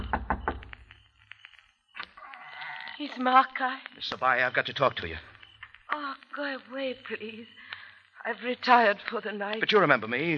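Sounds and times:
knocking on a house door at night: 0.0 - 0.7
speech: 3.0 - 5.3, 6.0 - 10.3.

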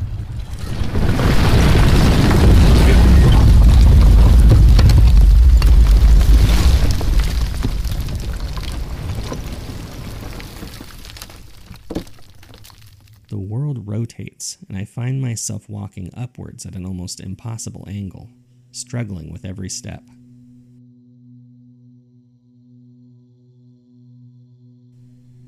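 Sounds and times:
deep heavy rumbling: 0.0 - 12.8
houses crumbling and collapsing: 0.0 - 13.4
sharp crack: 0.0 - 13.4
speech: 15.0 - 20.2.

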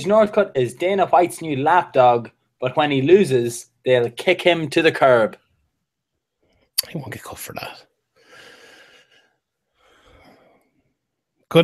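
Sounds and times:
speech: 0.0 - 5.4, 6.8 - 7.9
person gasping: 8.2 - 9.2.

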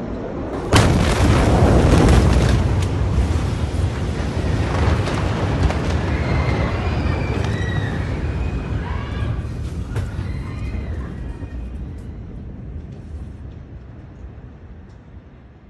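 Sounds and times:
massive explosion of an ammonium nitrate stockpile in a port warehouse: 0.6 - 10.9.

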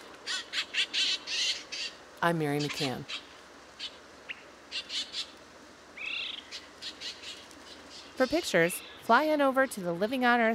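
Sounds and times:
harsh raspy Canada jay calls: 0.2 - 5.4, 6.0 - 9.2
speech: 2.2 - 3.2, 8.2 - 10.5.

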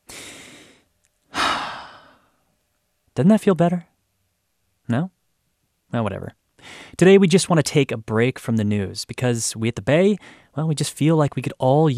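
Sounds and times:
sighing exhale: 0.0 - 2.4
deep breath: 0.0 - 2.5, 6.6 - 7.0, 10.2 - 10.6
speech: 3.2 - 3.9, 4.9 - 5.2, 5.9 - 11.9.

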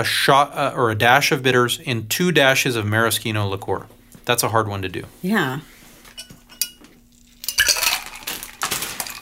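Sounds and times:
speech: 0.0 - 5.8
ice clinking in a mixing glass as a spoon stirs a gin cocktail: 7.4 - 9.1.

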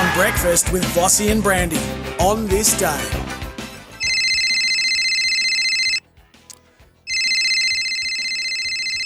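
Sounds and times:
speech: 0.2 - 3.4
electronic phone ringtone: 4.0 - 6.0, 7.1 - 9.0.

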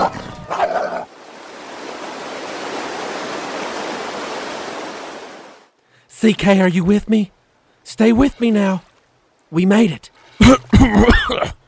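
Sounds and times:
coyote snarling and yelping as it attacks: 0.0 - 1.1
steady roar of rushing water: 0.0 - 11.6
speech: 6.2 - 8.9, 9.5 - 11.6.

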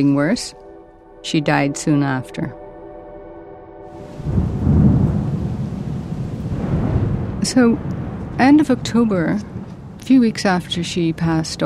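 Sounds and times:
speech: 0.0 - 0.6, 1.2 - 2.6, 7.4 - 11.6
deep rolling thunder on a stormy October night: 3.9 - 11.6
steady rain on a stormy October night: 3.9 - 11.6.

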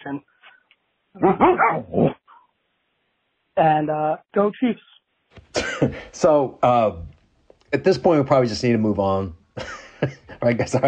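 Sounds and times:
speech: 0.0 - 0.3, 1.2 - 2.1, 3.6 - 7.1, 7.7 - 10.8
dog barking on a voicemail recording: 1.2 - 2.2
laughter: 5.6 - 7.0, 7.8 - 10.8.

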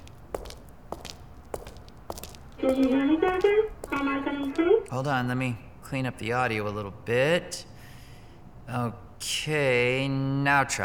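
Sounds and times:
faint footsteps walking: 0.0 - 5.2
speech: 2.6 - 7.7, 8.7 - 10.8.

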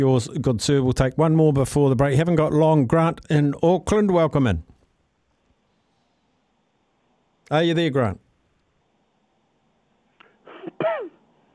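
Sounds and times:
speech: 0.0 - 4.7, 7.5 - 8.2
radio caller coughing over a phone line: 10.4 - 11.2.

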